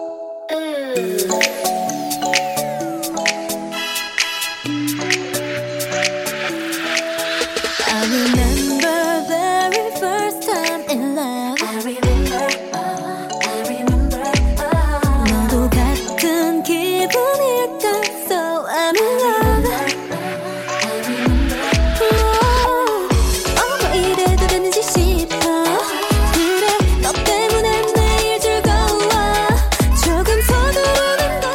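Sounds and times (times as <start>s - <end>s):
K-pop song with driving beat, synths and sung melody: 0.5s - 31.5s.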